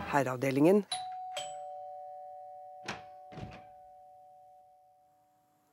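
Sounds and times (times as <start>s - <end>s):
speech: 0.1s - 1.1s
doorbell chime: 0.9s - 5.5s.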